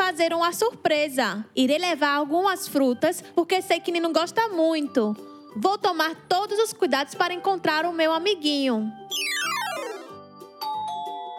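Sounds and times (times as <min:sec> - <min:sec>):
speech: 0:00.2 - 0:09.6
electronic doorbell ringing with a ding-dong chime: 0:09.1 - 0:11.3.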